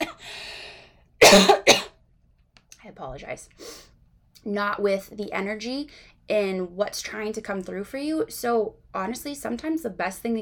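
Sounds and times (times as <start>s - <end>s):
harsh coughing from something stuck in the throat: 1.2s - 2.0s
speech: 1.3s - 1.8s, 3.0s - 10.4s.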